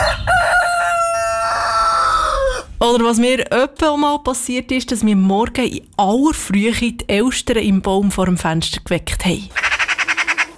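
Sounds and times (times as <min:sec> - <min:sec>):
rooster crowing: 0:00.0 - 0:02.7
speech: 0:02.9 - 0:09.7.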